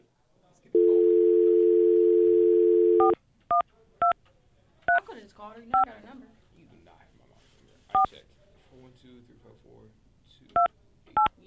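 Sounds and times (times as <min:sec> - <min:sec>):
steady telephone dial tone: 0:00.8 - 0:03.2
short clear telephone keypad tones: 0:00.8 - 0:04.2
speech: 0:05.4 - 0:06.4, 0:07.9 - 0:11.4.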